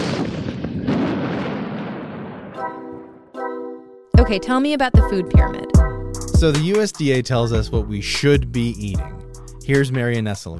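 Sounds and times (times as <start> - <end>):
heavy roaring rumble of avalanche: 0.0 - 2.6
giant cannon firing to trigger an avalanche: 0.0 - 2.8
speech: 4.2 - 10.5.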